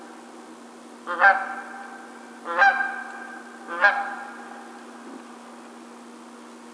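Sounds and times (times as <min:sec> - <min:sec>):
Canada goose honking with loud nasal calls: 0:01.1 - 0:05.2.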